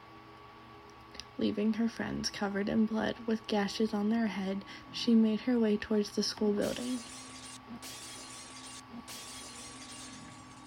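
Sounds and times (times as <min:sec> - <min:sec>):
speech: 0:01.4 - 0:07.2
glass windows shattering: 0:06.6 - 0:10.6
crunching tinkling glass shards: 0:06.7 - 0:10.6.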